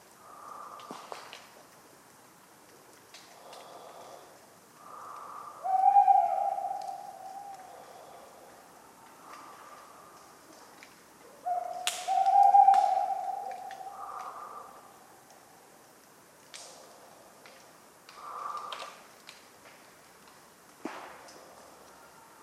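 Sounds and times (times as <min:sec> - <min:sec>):
tawny owl hooting on a cold autumn night in France: 0:04.8 - 0:08.3, 0:11.3 - 0:15.3.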